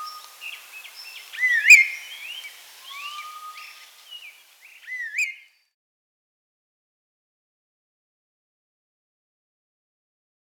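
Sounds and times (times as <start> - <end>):
chestnut-crowned laughingthrush whistled call: 0.0 - 5.6.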